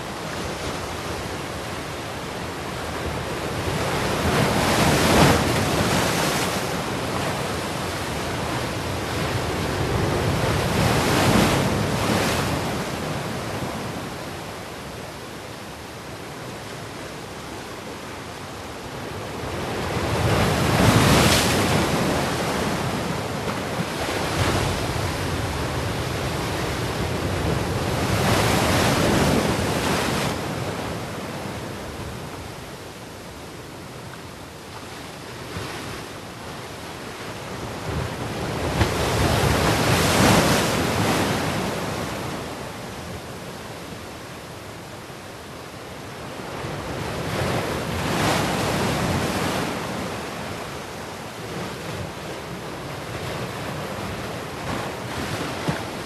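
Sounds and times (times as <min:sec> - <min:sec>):
sea waves crashing on rocks: 0:00.2 - 0:14.3, 0:19.2 - 0:32.5, 0:36.9 - 0:44.0, 0:46.5 - 0:56.0.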